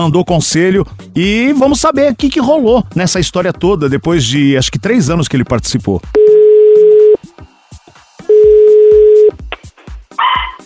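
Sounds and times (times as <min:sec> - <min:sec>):
speech: 0:00.0 - 0:06.3
phone ringing tones as a call is placed: 0:06.2 - 0:07.2, 0:08.3 - 0:09.4
short tinny dog bark through a phone line: 0:10.2 - 0:10.6.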